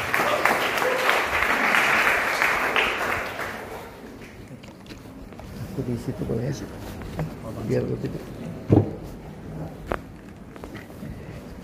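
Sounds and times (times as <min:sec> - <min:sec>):
audience applause: 0:00.0 - 0:04.4
speech: 0:05.8 - 0:08.8.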